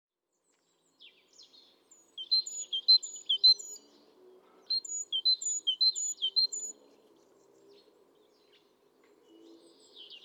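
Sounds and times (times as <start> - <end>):
great tit calls, Parus major: 2.2 - 3.9, 4.7 - 6.7.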